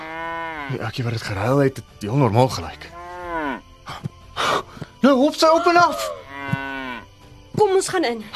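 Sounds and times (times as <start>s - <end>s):
cow mooing with a long harmonic low call: 0.0s - 0.8s, 2.8s - 3.7s, 6.2s - 7.1s
speech: 0.7s - 3.0s, 5.0s - 6.6s, 7.6s - 8.3s.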